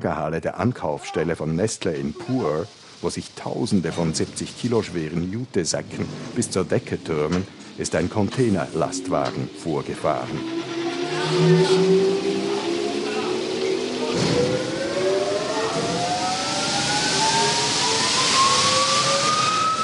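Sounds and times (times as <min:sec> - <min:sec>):
speech: 0:00.0 - 0:12.2
blower blowing coffee beans into a plastic-lined shipping container: 0:05.9 - 0:19.8.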